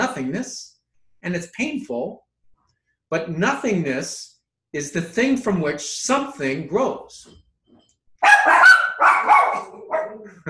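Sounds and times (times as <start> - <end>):
speech: 0.2 - 2.2, 3.1 - 7.4, 8.2 - 10.4
pet dogs barking: 8.2 - 10.4.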